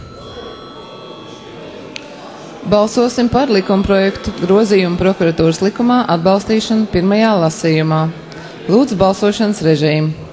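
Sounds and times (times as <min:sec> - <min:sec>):
electric bell ringing in a parliamentary chamber to call a repeat vote: 0:00.0 - 0:07.2
speech: 0:02.6 - 0:10.2.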